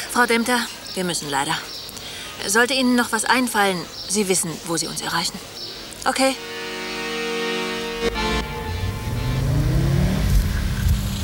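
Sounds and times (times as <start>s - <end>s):
road rumble heard from inside a car cabin: 0.0s - 11.2s
speech: 0.2s - 1.8s, 2.4s - 6.6s
car engine drone heard from inside the cabin, accelerating: 6.4s - 11.2s.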